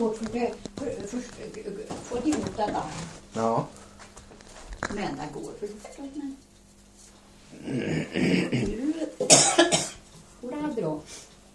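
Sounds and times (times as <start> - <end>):
speech: 0.0 - 3.9, 4.9 - 6.5, 7.5 - 11.3
person murmuring: 7.5 - 9.2
person coughing: 7.7 - 10.0.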